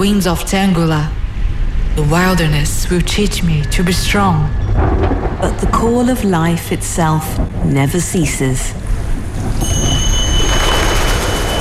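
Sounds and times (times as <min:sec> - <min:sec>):
speech: 0:00.0 - 0:01.2, 0:02.0 - 0:08.8
train running on tracks: 0:02.0 - 0:11.5.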